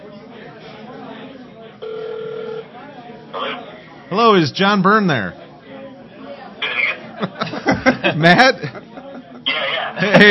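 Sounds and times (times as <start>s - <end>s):
murmur of talk: 0.0s - 10.3s
telephone ringback tone on a dialled call: 1.8s - 2.7s
speech: 4.1s - 5.4s, 8.1s - 8.8s, 10.0s - 10.3s
laughter: 6.7s - 10.3s.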